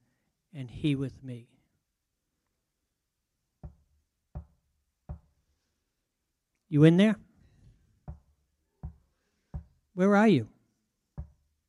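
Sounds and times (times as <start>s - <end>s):
speech: 0.6s - 1.6s, 6.7s - 7.2s, 10.0s - 10.6s
firm knocks on a wooden door: 3.6s - 5.3s, 8.0s - 9.8s, 11.2s - 11.4s.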